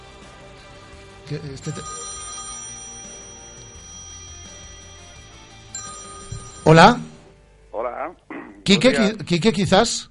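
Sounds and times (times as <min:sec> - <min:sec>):
speech: 0:01.3 - 0:02.0, 0:06.6 - 0:07.1, 0:08.7 - 0:10.0
telephone ringing for an incoming call: 0:01.5 - 0:07.4.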